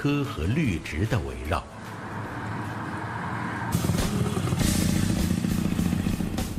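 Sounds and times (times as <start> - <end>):
speech: 0.0 - 1.8
motorcycle engine revving with mechanical clatter: 2.0 - 6.5.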